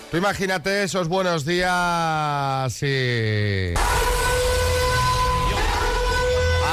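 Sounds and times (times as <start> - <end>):
speech: 0.1 - 4.2
phone emergency alert tone: 4.1 - 6.7.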